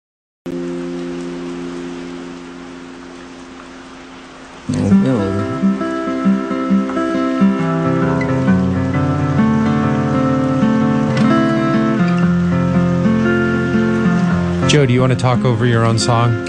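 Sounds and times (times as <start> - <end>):
plucked guitar notes: 0.5 - 16.4
steady hiss of rain: 0.5 - 16.4
sustained droning tones: 0.5 - 16.4
speech: 4.7 - 5.0, 14.7 - 16.4.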